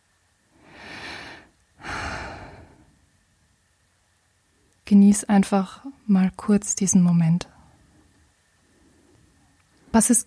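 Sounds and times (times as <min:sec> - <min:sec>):
person taking a deep breath in and out during a mindfulness exercise: 0:00.6 - 0:03.0
speech: 0:04.9 - 0:07.6, 0:10.0 - 0:10.2.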